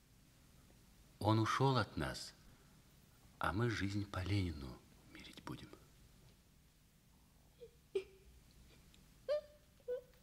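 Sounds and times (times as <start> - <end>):
speech: 1.2 - 2.4, 3.4 - 4.8, 5.5 - 5.8
frightened girl whimpering behind a stove: 7.5 - 10.2.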